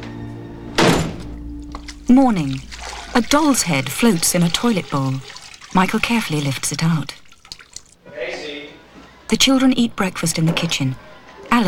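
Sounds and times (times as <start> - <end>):
door being slowly closed: 0.7 - 1.5
speech: 2.1 - 7.2, 9.3 - 11.6.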